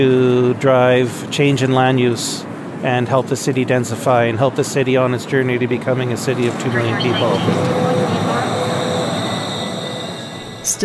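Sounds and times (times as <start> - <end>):
speech: 0.0 - 8.1
light rail train rumbling: 0.0 - 10.8
high electric whine of a light rail train: 6.0 - 10.8.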